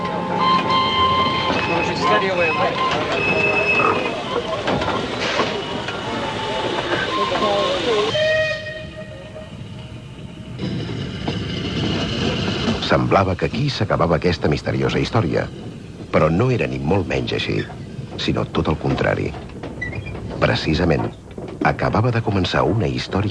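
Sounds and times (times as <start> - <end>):
departing train on the Eindhoven–Rotterdam line rumbling clatter: 0.0 - 23.2
whistle tones: 0.3 - 4.6, 5.5 - 9.6
speech: 2.0 - 3.7, 13.1 - 19.5, 20.4 - 23.2.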